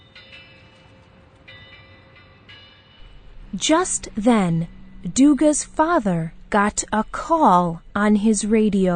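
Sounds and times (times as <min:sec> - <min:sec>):
train rumbling along the rails toward a bridge: 0:00.0 - 0:08.9
rhythmic bursts of train wheel noise: 0:03.0 - 0:08.9
train high metallic squeals: 0:03.0 - 0:08.9
speech: 0:03.5 - 0:08.9.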